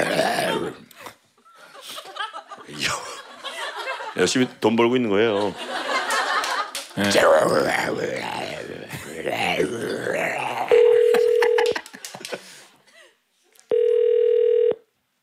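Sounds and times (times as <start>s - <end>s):
laughter: 1.5s - 4.6s, 5.2s - 7.3s, 11.0s - 13.0s
speech: 4.2s - 5.8s, 7.0s - 10.2s
telephone ringback tone: 10.7s - 11.7s, 13.7s - 14.8s.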